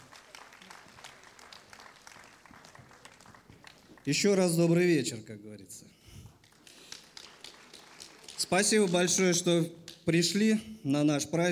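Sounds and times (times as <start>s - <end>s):
audience applauding at a live radio event: 0.0s - 4.5s, 6.3s - 10.0s
speech: 4.0s - 6.0s, 8.5s - 11.4s.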